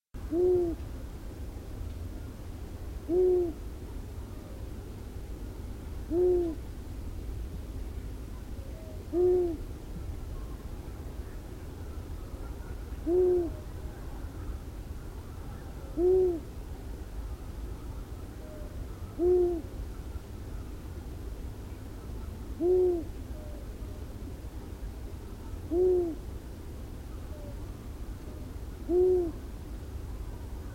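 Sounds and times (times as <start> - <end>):
Long-eared Owl Asio otus calling: 0.2 - 0.8, 3.1 - 3.6, 6.1 - 6.6, 8.7 - 9.6, 12.4 - 13.7, 15.4 - 16.5, 18.4 - 20.7, 22.6 - 23.7, 25.6 - 26.2, 28.8 - 29.4.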